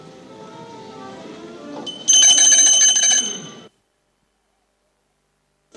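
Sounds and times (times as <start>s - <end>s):
small hand bell ringing: 1.9s - 3.7s.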